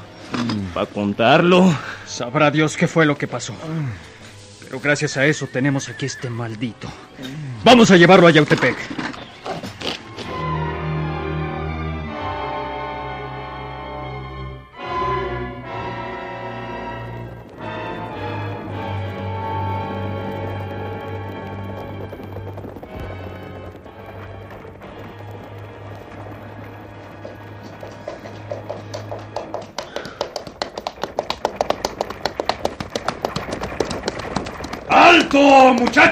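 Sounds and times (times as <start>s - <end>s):
horses galloping: 0.0s - 10.4s, 15.7s - 36.1s
speech: 0.4s - 9.1s
steady low drone: 10.0s - 36.1s.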